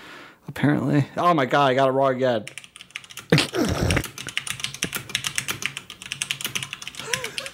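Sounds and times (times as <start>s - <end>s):
speech: 0.5s - 2.6s
password typed on a computer keyboard: 2.5s - 7.5s
laughter: 7.0s - 7.5s.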